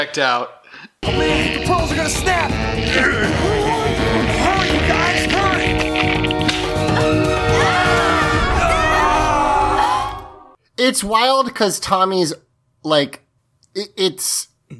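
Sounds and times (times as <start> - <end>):
speech: 0.0 - 4.3, 10.8 - 13.2, 13.8 - 14.7
TV character screaming while falling: 1.0 - 5.9, 6.8 - 10.3.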